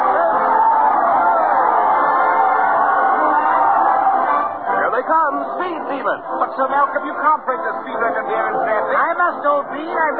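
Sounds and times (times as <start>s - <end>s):
large parade crowd cheering and chattering: 0.0s - 10.1s
speech: 6.2s - 10.1s.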